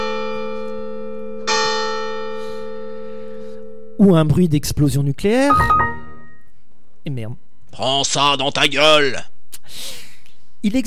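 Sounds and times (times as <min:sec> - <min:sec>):
church bells pealing: 0:00.0 - 0:03.3
speech: 0:04.0 - 0:05.8, 0:07.0 - 0:10.0, 0:10.6 - 0:10.8.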